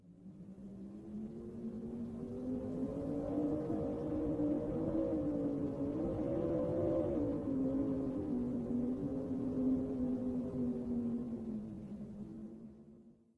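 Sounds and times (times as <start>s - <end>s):
wind in a tunnel: 0.0s - 13.3s.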